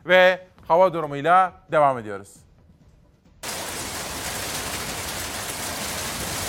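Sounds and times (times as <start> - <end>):
speech: 0.1 - 2.5
heavy rain downpour: 3.4 - 6.4.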